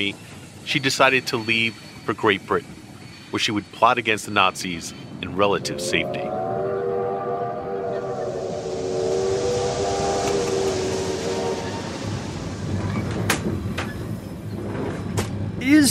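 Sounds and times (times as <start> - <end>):
speech: 0.0 - 6.4, 15.6 - 15.8
train bound for London rumbling: 0.0 - 15.8
steam whistle: 5.5 - 14.0.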